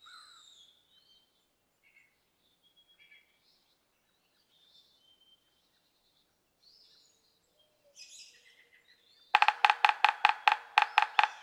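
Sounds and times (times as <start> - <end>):
yellow-bellied sapsucker giving nasal mewing calls: 9.4 - 11.4.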